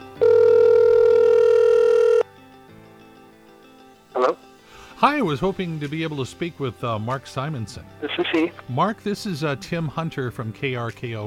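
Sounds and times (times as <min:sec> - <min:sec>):
telephone ringing tone of a call being dialed: 0:00.0 - 0:02.3
speech: 0:05.0 - 0:11.2.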